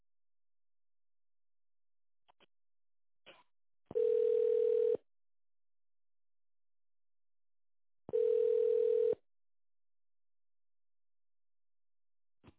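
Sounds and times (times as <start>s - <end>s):
telephone ringback tone: 4.0s - 5.0s, 8.1s - 9.2s.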